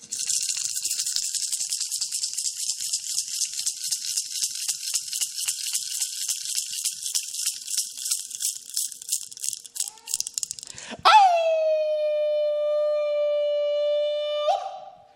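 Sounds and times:
rapid rhythmic rattling noise: 0:00.0 - 0:10.8
person reciting poetry howling like a dog: 0:11.0 - 0:15.0.

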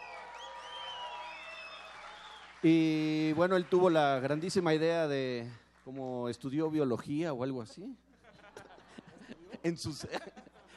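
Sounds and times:
sweeping whistles: 0:00.0 - 0:02.6
audience applause: 0:00.0 - 0:04.6
speech: 0:02.6 - 0:08.0, 0:09.6 - 0:10.4
laughter: 0:08.1 - 0:10.7.

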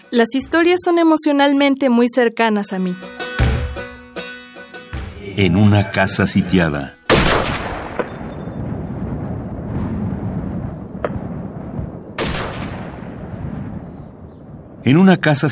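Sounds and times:
speech: 0:00.1 - 0:03.2, 0:05.4 - 0:07.0, 0:14.9 - 0:15.4
small explosive bangs: 0:07.1 - 0:14.0.

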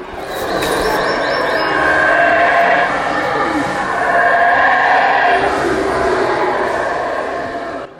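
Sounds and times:
high bird call: 0:00.0 - 0:05.5
howler monkeys roaring in chorus: 0:00.0 - 0:07.9.

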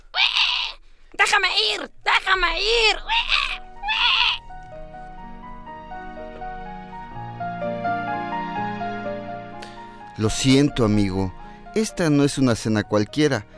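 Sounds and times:
piglet squealing: 0:00.0 - 0:00.8, 0:01.5 - 0:04.6
speech: 0:01.3 - 0:03.5, 0:10.2 - 0:13.5
soft music: 0:02.5 - 0:13.5.

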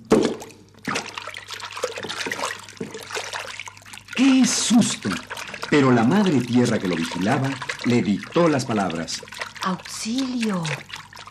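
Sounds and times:
churning, sloshing wash of river water: 0:00.0 - 0:11.2
speech: 0:04.2 - 0:11.0.

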